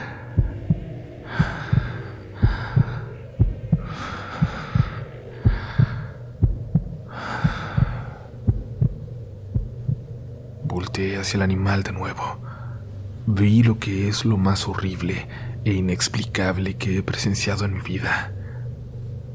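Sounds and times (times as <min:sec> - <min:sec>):
heavy agitated breaths: 0:00.0 - 0:10.1, 0:12.2 - 0:13.2, 0:15.2 - 0:15.6
person's own steady heartbeat thumping in paired beats: 0:00.0 - 0:10.1
speech: 0:11.0 - 0:12.5, 0:13.3 - 0:18.4.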